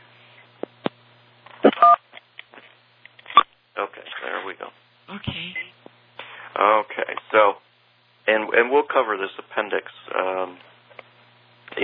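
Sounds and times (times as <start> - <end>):
long two-tone phone beep: 1.7 - 2.0
speech: 4.5 - 5.8, 6.6 - 7.6, 8.6 - 10.7.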